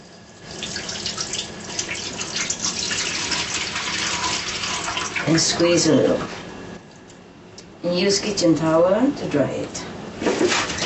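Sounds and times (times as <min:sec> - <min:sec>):
filtered water running from a kitchen tap as food is rinsed: 0:00.1 - 0:05.4
speech: 0:05.3 - 0:06.4, 0:07.9 - 0:10.7.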